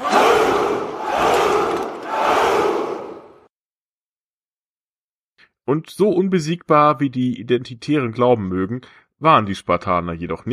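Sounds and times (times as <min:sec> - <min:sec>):
large crowd shouting a battle cry in unison: 0:00.0 - 0:03.5
speech: 0:05.7 - 0:10.5.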